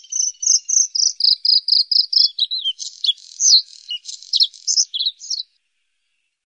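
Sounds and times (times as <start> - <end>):
bluethroat singing: 0.0 - 5.5.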